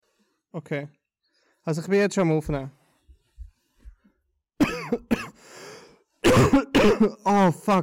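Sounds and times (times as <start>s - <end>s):
speech: 0.5s - 1.0s, 1.6s - 2.8s, 4.9s - 5.3s, 6.6s - 7.8s
person coughing: 4.6s - 5.4s, 6.2s - 7.3s.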